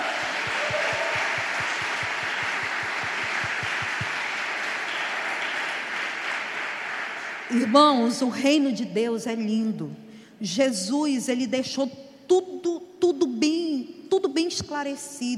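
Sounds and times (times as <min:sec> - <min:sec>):
rhythmic low thumps: 0:00.0 - 0:04.3
large congregation applauding: 0:00.0 - 0:08.2
speech: 0:07.5 - 0:13.6, 0:14.2 - 0:15.3.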